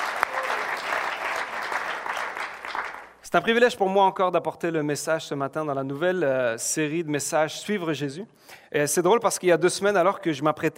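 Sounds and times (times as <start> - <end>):
audience applause at a church service: 0.0 - 3.2
speech: 3.3 - 10.7.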